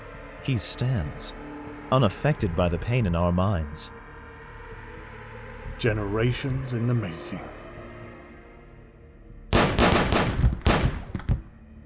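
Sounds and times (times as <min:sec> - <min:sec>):
speech: 0:00.4 - 0:04.0, 0:05.8 - 0:07.6
gunshots at close range: 0:09.6 - 0:11.6.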